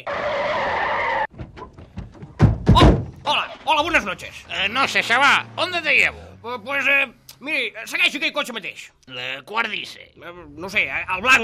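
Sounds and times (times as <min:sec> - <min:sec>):
taxi tyres skidding and screeching at night: 0:00.0 - 0:11.4
knocks and rustles: 0:01.3 - 0:04.5
speech: 0:03.8 - 0:11.4.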